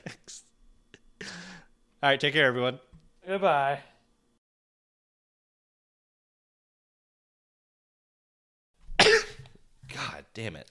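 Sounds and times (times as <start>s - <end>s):
speech: 2.0s - 3.9s, 10.4s - 10.7s
sharp throaty cough: 8.9s - 9.6s.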